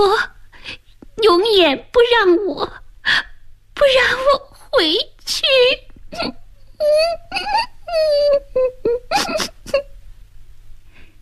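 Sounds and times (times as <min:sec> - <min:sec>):
child's low mournful sobbing: 0:00.0 - 0:00.4, 0:06.1 - 0:09.9
speech: 0:01.6 - 0:02.8, 0:03.9 - 0:09.5.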